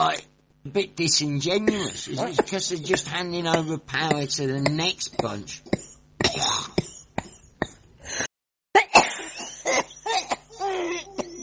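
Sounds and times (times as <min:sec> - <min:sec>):
speech: 0:00.0 - 0:06.7
woman fish smoking plant worker coughing harshly: 0:01.6 - 0:02.4, 0:05.2 - 0:11.4.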